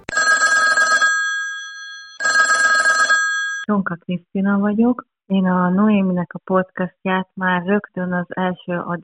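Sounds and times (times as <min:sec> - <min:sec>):
telephone ringing tone of outgoing call: 0:00.0 - 0:03.7
speech: 0:03.7 - 0:09.0.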